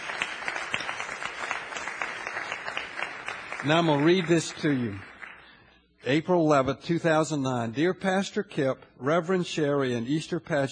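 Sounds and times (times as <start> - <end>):
church audience applauding: 0.0 - 5.6
speech: 3.6 - 5.1, 6.0 - 10.7.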